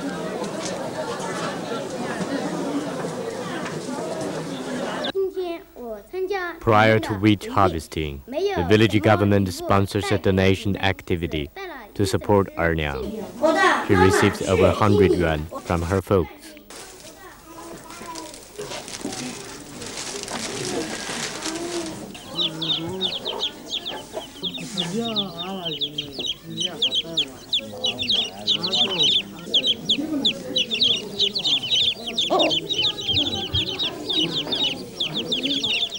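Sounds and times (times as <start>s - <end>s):
newly hatched chickens clucking and peeping: 0.0s - 5.2s, 12.0s - 16.0s, 16.6s - 35.9s
speech: 6.6s - 16.6s.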